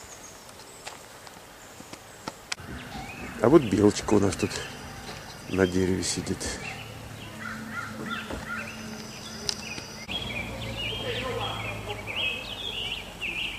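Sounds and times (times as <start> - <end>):
several birds chirping and singing outdoors: 0.0 - 13.5
speech: 3.4 - 4.8, 5.5 - 6.8.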